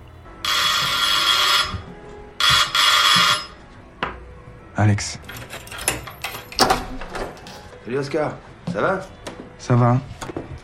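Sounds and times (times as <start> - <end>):
electronic doorbell ringing: 0.4 - 3.6
speech: 4.8 - 5.4, 7.9 - 10.1.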